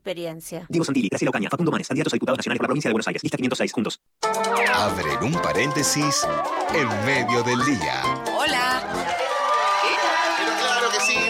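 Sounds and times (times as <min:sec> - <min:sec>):
speech: 0:00.0 - 0:09.0
recorded studio crowd cheering and applause with whoops: 0:04.4 - 0:11.2.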